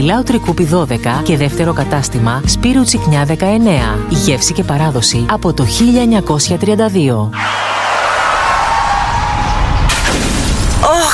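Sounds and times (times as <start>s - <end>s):
speech: 0.0s - 8.2s
car crash with crunching metal: 9.5s - 10.9s
debris rattling: 9.5s - 11.1s
glass shattering: 9.9s - 11.1s.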